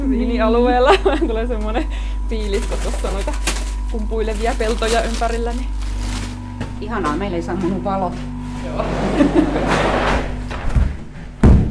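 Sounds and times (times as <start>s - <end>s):
laughter: 0.0s - 1.9s, 8.7s - 10.3s
dull rumbling and shuffling movement: 0.0s - 11.7s
speech: 0.4s - 6.0s, 6.8s - 10.1s
heavy storage room door shutting with a thud: 9.6s - 11.7s.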